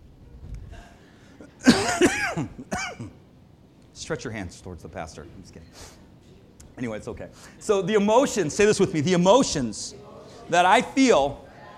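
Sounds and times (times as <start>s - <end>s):
faint murmur: 0.0s - 11.7s
person with a dry cough coughing in dry harsh bursts: 1.6s - 3.2s
speech: 1.9s - 3.2s, 4.0s - 6.0s, 6.8s - 11.4s
soft intake of breath: 5.7s - 6.1s, 7.3s - 7.6s.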